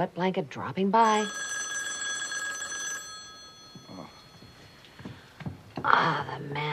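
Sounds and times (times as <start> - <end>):
speech: 0.0 - 1.6, 5.8 - 6.7
telephone ringing with a bright bell tone: 1.0 - 5.3.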